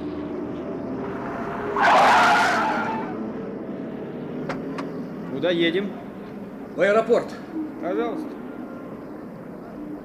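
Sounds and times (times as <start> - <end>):
taxi car low engine rumble: 0.0 - 10.0
taxi car tires screeching while pulling up: 1.0 - 3.3
speech: 5.4 - 6.0, 6.8 - 8.4.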